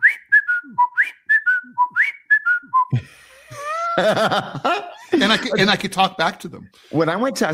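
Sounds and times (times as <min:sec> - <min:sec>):
person whistling an imitation of a cockatiel call: 0:00.0 - 0:03.0
person laughing: 0:02.9 - 0:05.8
speech: 0:04.0 - 0:07.5.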